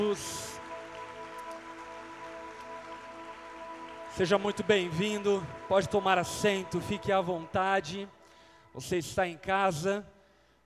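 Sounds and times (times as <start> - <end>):
speech: 0.0 - 0.4, 4.2 - 10.1
audience applauding loudly: 0.0 - 8.3
sustained organ-like musical tones: 0.0 - 9.6.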